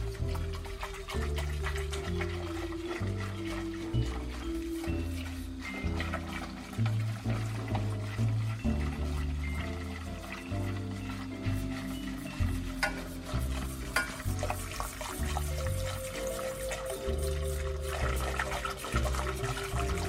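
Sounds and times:
spoon stirring thickening flour paste in a pan: 0.2 - 19.9.

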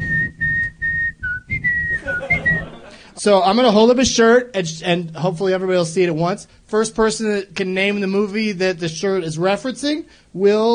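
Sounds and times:
person whistling a tune: 0.0 - 2.8
laughter: 2.0 - 3.2
speech: 3.2 - 10.7.

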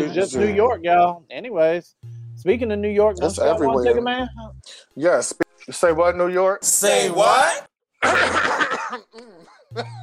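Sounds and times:
speech: 0.0 - 10.0
laughter: 8.0 - 10.0
rough raspy throat clearing: 8.8 - 10.0.

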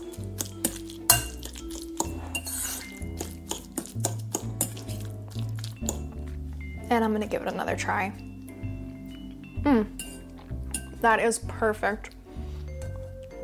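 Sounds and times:
utensil clinking against a bowl while mixing canned tuna with lemon juice and pepper: 0.0 - 6.8, 9.9 - 11.1
speech: 6.9 - 8.3, 11.0 - 12.2.

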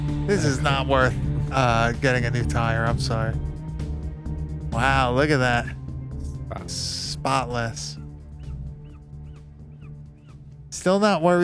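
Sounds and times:
speech: 0.3 - 3.5, 4.7 - 5.8, 6.5 - 8.0, 10.8 - 11.4
bird honking: 7.8 - 10.4.

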